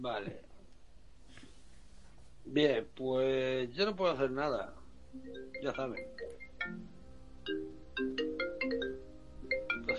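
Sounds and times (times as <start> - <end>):
speech: 0.0 - 0.5, 2.4 - 8.2
phone ringtone chiming electronic melody: 5.2 - 9.9.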